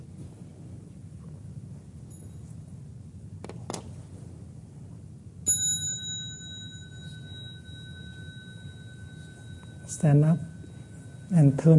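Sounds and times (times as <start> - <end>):
small mindfulness bell struck at a Buddhist community gathering: 2.0 - 2.7, 5.4 - 11.7
speech: 10.0 - 10.5, 11.3 - 11.7.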